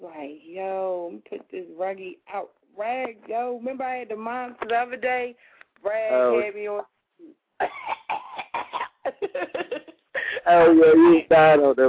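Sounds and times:
speech: 0.2s - 6.9s, 7.6s - 8.2s, 9.4s - 11.8s
person performing staged coughing: 7.6s - 9.0s.

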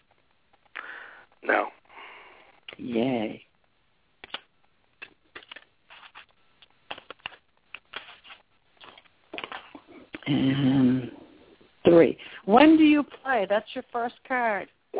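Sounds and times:
speech: 1.4s - 1.8s, 2.7s - 3.5s, 10.3s - 11.2s, 11.9s - 14.9s
deck of cards being shuffled and bridged: 4.2s - 9.9s.

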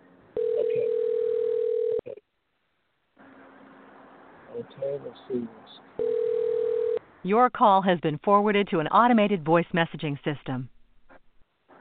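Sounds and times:
telephone dial tone: 0.4s - 2.1s, 6.0s - 7.0s
speech: 4.7s - 10.7s.

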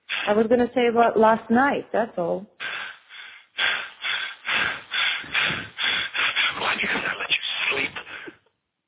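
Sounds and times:
loud heavy breathing in quick rhythmic bursts: 0.0s - 0.4s, 2.6s - 8.4s
speech: 0.3s - 2.5s.

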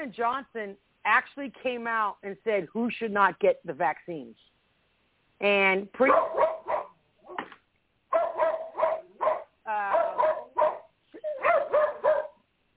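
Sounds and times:
speech: 0.0s - 4.5s, 5.4s - 6.6s
several dogs barking with higher yips: 6.0s - 7.0s, 8.1s - 12.4s.

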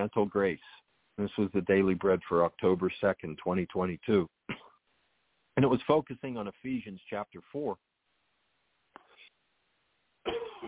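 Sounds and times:
speech: 0.0s - 4.4s, 5.6s - 7.9s
person coughing: 4.5s - 4.8s, 10.2s - 10.6s.

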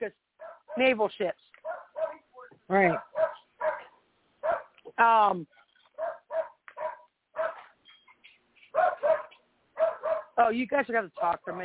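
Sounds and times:
dog barking: 0.4s - 0.9s, 1.6s - 2.3s, 2.9s - 4.8s, 6.0s - 7.8s, 8.7s - 10.4s, 11.2s - 11.6s
speech: 0.8s - 1.5s, 2.7s - 3.1s, 5.0s - 5.6s, 10.5s - 11.6s.

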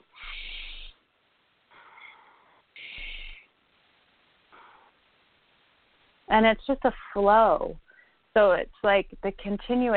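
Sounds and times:
deep continuous breathing: 0.0s - 1.1s, 1.7s - 3.6s
speech: 6.3s - 7.8s, 8.4s - 9.9s.

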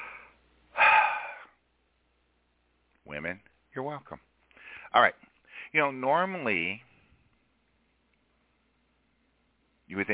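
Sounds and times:
faint breath: 0.0s - 1.6s, 4.5s - 5.7s
person exhaling after running up two flights of stairs: 0.0s - 1.6s
speech: 3.1s - 4.3s, 4.9s - 6.9s, 9.9s - 10.1s.

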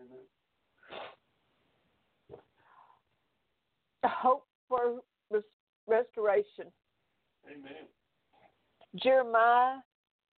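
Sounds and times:
person blowing nose: 0.8s - 1.2s
speech: 4.0s - 6.8s, 7.4s - 8.0s, 8.9s - 9.9s.

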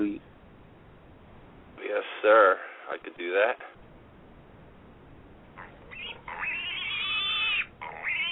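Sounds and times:
speech: 2.2s - 3.8s
pig squealing sound effect played by pressing a button: 5.6s - 8.3s.

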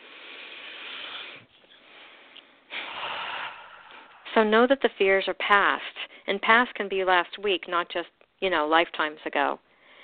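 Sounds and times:
deep breath: 0.0s - 4.3s, 9.7s - 10.0s
speech: 4.4s - 9.6s.

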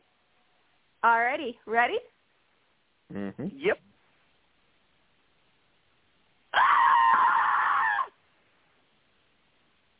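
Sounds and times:
speech: 1.0s - 2.2s, 3.1s - 3.9s
person screaming loudly: 6.6s - 8.1s.

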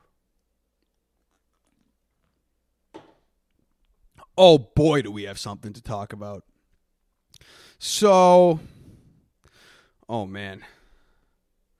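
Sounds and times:
person sipping tea: 0.8s - 2.5s
speech: 4.4s - 6.5s, 7.4s - 8.8s, 10.1s - 10.8s.

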